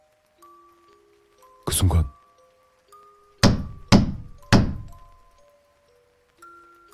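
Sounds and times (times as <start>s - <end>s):
speech: 1.8s - 2.2s
heavy dull knocking on a door: 3.4s - 5.1s.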